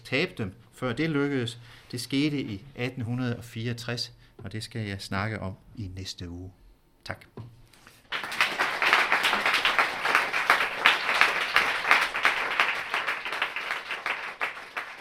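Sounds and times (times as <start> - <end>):
speech: 0.1 - 7.5
students applauding after a lecture: 8.0 - 15.0.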